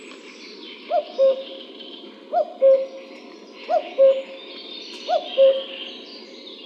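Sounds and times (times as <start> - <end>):
birds twittering: 0.0 - 6.6
common cuckoo calling: 0.9 - 1.6, 2.3 - 3.0, 3.6 - 5.8.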